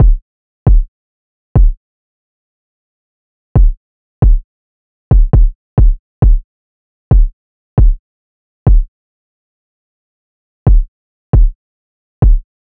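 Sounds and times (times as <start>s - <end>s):
kick drum loop: 0.0s - 0.9s, 1.6s - 1.8s, 3.6s - 4.4s, 5.1s - 6.4s, 7.1s - 8.0s, 8.7s - 8.9s, 10.7s - 11.6s, 12.2s - 12.5s.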